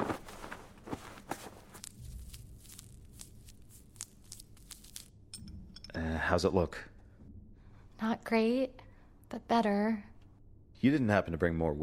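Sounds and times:
footsteps of a woman walking over to an injured man: 0.0s - 5.2s
speech: 6.3s - 7.0s, 8.0s - 10.1s, 10.8s - 11.8s.

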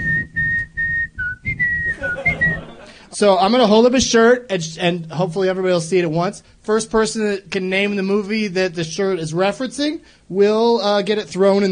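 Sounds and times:
person whistling a short melody: 0.0s - 2.8s
laughter: 1.9s - 3.2s
speech: 3.2s - 11.7s.

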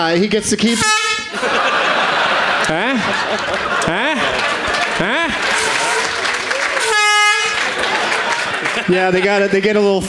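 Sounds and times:
speech: 0.0s - 2.0s, 2.7s - 4.4s, 8.9s - 10.0s
crowd noise: 0.0s - 10.0s
air horn blast: 0.7s - 1.3s, 5.1s - 7.8s
laughter: 1.3s - 10.0s.

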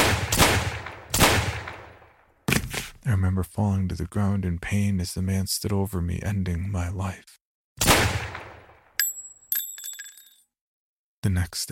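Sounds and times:
gunshots fired from a gun: 0.0s - 2.1s, 7.8s - 8.8s
speech: 3.1s - 7.9s, 11.2s - 11.7s.

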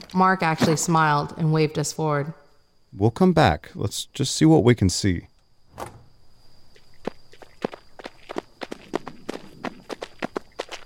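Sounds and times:
low hiss: 0.0s - 9.1s
speech: 0.1s - 6.0s
footsteps of several people running: 7.0s - 10.8s.

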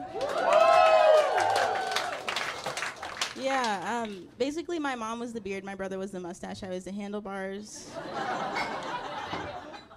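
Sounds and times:
crowd clapping and cheering with whoops and shouts: 0.0s - 4.1s
speech: 3.5s - 8.7s
laughter: 7.8s - 9.9s.

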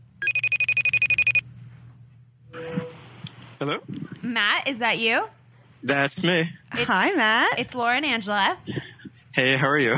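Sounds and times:
telephone ringing trill after a number is dialled: 0.2s - 1.4s
speech: 3.6s - 9.9s.

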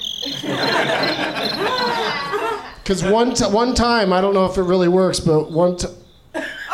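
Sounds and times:
cricket noisemaker chirping in a continuous high trill: 0.0s - 3.3s, 5.4s - 6.6s
laughter: 0.2s - 4.4s, 6.4s - 6.7s
speech: 2.9s - 6.0s.

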